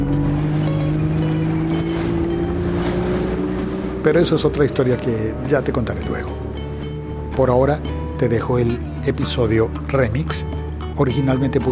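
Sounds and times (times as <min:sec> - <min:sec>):
wind rushing and buffeting: 0:00.0 - 0:08.2
water noise: 0:00.0 - 0:11.2
whale-watching motorboat engine droning on the Pacific: 0:00.0 - 0:11.5
speech: 0:04.0 - 0:06.4, 0:07.4 - 0:11.6.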